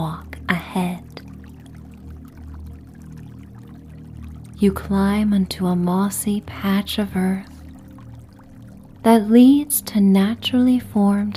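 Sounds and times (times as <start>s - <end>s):
stream flowing with gurgling rush and low rumble: 0.0s - 11.3s
speech: 4.6s - 7.5s, 9.0s - 11.3s.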